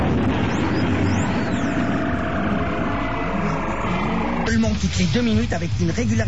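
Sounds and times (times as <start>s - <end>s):
faint whining sweep of aircraft: 0.0s - 4.6s
aircraft engines roaring overhead: 0.0s - 6.2s
speech: 4.8s - 6.2s.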